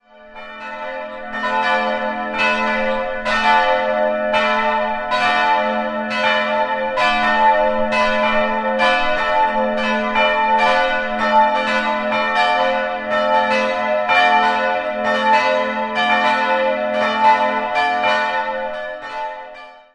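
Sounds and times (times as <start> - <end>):
bells ringing in Paulushofen: 0.1 - 19.9.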